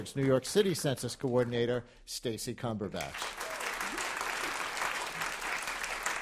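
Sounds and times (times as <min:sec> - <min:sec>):
speech: 0:00.0 - 0:03.4
audience applause: 0:03.0 - 0:06.1.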